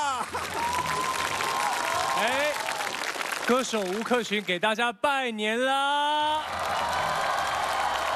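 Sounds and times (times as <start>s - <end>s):
audience applause at a New Year greeting event: 0.2s - 4.6s, 6.3s - 8.1s
speech: 3.5s - 6.5s.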